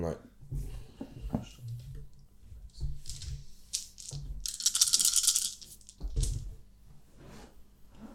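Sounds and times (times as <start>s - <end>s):
speech: 0.0s - 0.6s
dice rattling across a hard surface: 3.0s - 6.5s.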